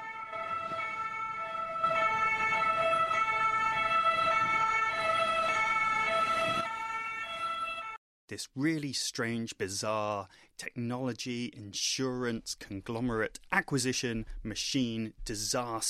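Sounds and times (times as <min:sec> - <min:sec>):
ambulance siren wailing in two tones: 0:00.0 - 0:08.0
speech: 0:08.3 - 0:15.8.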